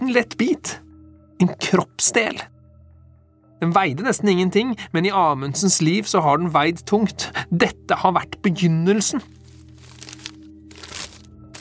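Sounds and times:
speech: 0:00.1 - 0:00.8, 0:01.4 - 0:02.6, 0:03.6 - 0:09.4
paper wrapping crinkling and rustling as it is unfolded: 0:09.3 - 0:11.5.

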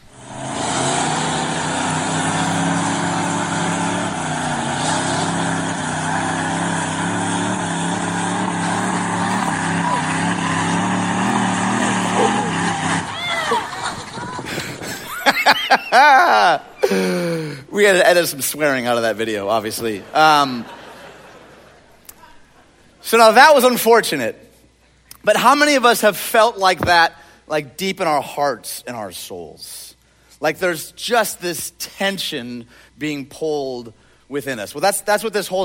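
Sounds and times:
monster truck engines revving in a tug of war: 0:00.0 - 0:17.5
excited voices: 0:08.0 - 0:17.4
people laughing: 0:08.5 - 0:10.6, 0:11.2 - 0:17.7, 0:19.7 - 0:22.9
speech: 0:17.8 - 0:20.8, 0:23.1 - 0:24.4, 0:25.2 - 0:35.6.

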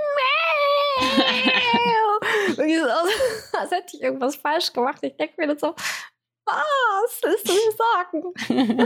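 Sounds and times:
person imitating a cat meowing: 0:00.0 - 0:02.0
laughter: 0:01.0 - 0:03.4, 0:08.4 - 0:08.8
speech: 0:02.6 - 0:08.8.

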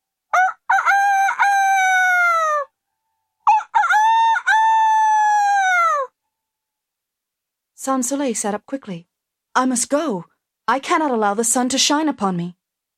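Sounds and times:
village cockerels crowing at dawn: 0:00.3 - 0:06.2
speech: 0:07.8 - 0:12.6.

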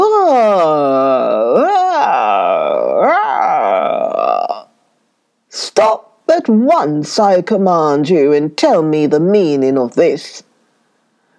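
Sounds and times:
person's voice imitating a big lion's roar: 0:00.0 - 0:04.7
speech: 0:05.8 - 0:10.5.

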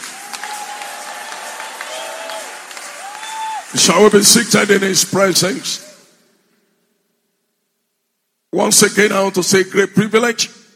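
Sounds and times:
church audience shouting and whooping: 0:00.0 - 0:03.8
church audience clapping: 0:00.0 - 0:05.6
speech: 0:03.7 - 0:05.9, 0:08.6 - 0:10.6.

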